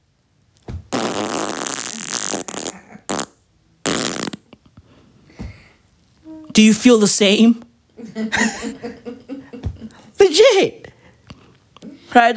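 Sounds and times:
loud raspy fart: 0.9 - 4.5
speech: 6.6 - 8.7, 10.4 - 10.8, 12.2 - 12.3
laughter: 8.0 - 10.1.

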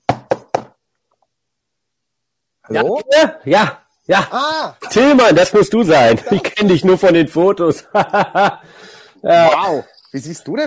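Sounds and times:
knocking on a door: 0.0 - 0.8
speech: 2.7 - 10.6
laughter: 6.1 - 6.8, 7.8 - 8.8.

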